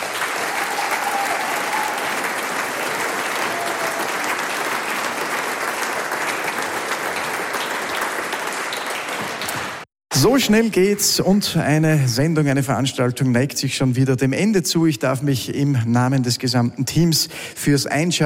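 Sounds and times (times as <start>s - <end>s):
large audience applause: 0.0s - 9.9s
speech: 10.2s - 18.2s.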